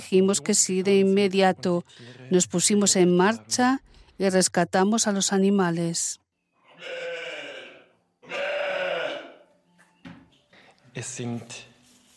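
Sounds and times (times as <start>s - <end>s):
speech: 0.0s - 6.2s, 6.8s - 7.1s, 11.0s - 11.7s
Valais Blacknose and Jacob sheep bleating: 6.6s - 9.5s.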